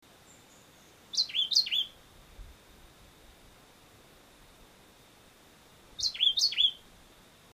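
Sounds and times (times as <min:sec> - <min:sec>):
Vireo modestus calling in Barbecue Bottom Jamaica: 0:00.3 - 0:02.0, 0:06.0 - 0:06.8.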